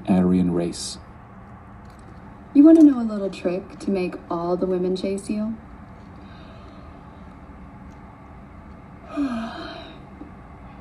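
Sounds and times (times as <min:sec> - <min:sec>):
speech: 0:00.3 - 0:01.1, 0:02.6 - 0:05.6, 0:09.2 - 0:09.6
person yawning: 0:09.1 - 0:10.0.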